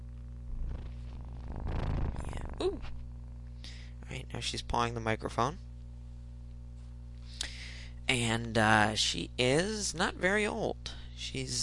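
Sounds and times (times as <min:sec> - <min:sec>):
young female kitten purring on a person's lap: 0:00.5 - 0:03.4
speech: 0:02.6 - 0:03.0, 0:04.3 - 0:05.7, 0:08.1 - 0:11.6.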